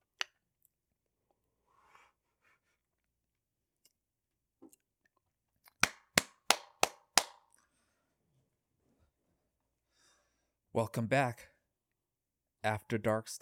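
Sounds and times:
hand claps for sound sync: 0:05.8 - 0:07.4
speech: 0:10.8 - 0:11.5, 0:12.6 - 0:13.4.

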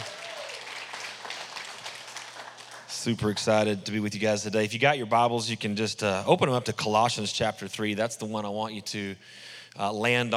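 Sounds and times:
audience round of applause: 0:00.0 - 0:03.8
speech: 0:03.0 - 0:10.3.

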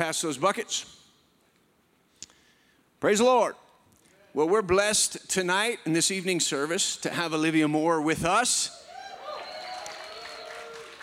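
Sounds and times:
speech: 0:00.0 - 0:01.0, 0:03.0 - 0:03.6, 0:04.4 - 0:08.8
audience clapping: 0:09.2 - 0:11.0.

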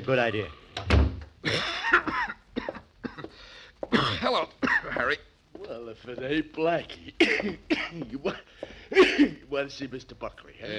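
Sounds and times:
speech: 0:00.0 - 0:00.6, 0:01.4 - 0:02.0, 0:03.9 - 0:10.7
person with a cold coughing harshly: 0:01.4 - 0:03.3, 0:03.9 - 0:05.1, 0:07.2 - 0:09.4.

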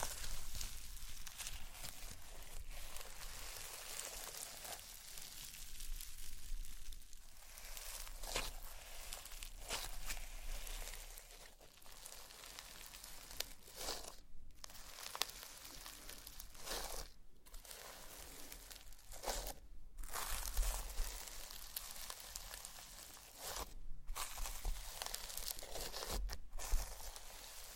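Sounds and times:
slime squished and pressed with wet crackle: 0:00.0 - 0:27.7.

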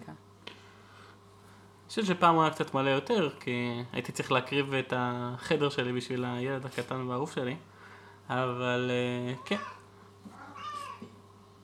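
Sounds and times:
faint steady hum: 0:00.0 - 0:11.6
speech: 0:01.9 - 0:07.7, 0:08.3 - 0:09.8
cat meowing: 0:09.4 - 0:11.2.

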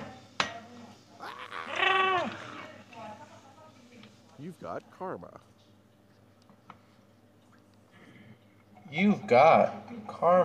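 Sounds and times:
loud wavering goat scream from soundboard: 0:01.2 - 0:02.7
speech: 0:04.5 - 0:05.6, 0:08.9 - 0:10.4.

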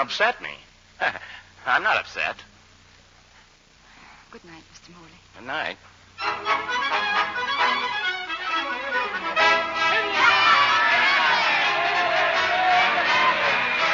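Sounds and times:
speech: 0:00.0 - 0:02.5, 0:04.3 - 0:07.4
large crowd yelling and cheering at a rally: 0:08.8 - 0:13.9.

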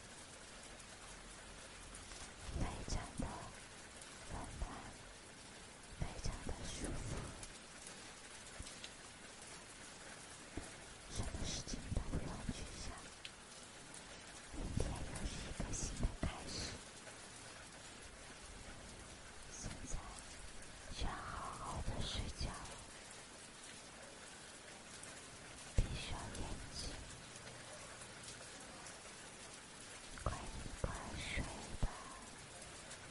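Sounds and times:
steady dense rain: 0:00.0 - 0:33.0.

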